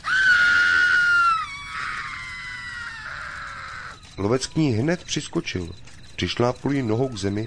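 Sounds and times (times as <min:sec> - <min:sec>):
woman screaming as she falls: 0:00.0 - 0:04.0
speech: 0:04.2 - 0:07.4.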